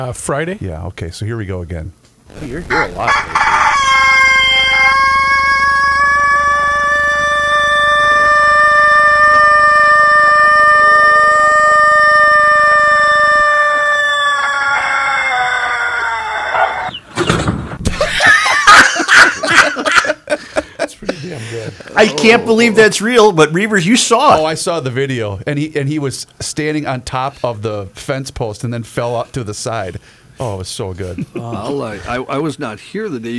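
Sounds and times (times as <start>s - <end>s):
speech: 0.0s - 3.6s, 22.0s - 33.3s
rooster crowing: 2.7s - 17.1s
laughter: 17.9s - 23.0s.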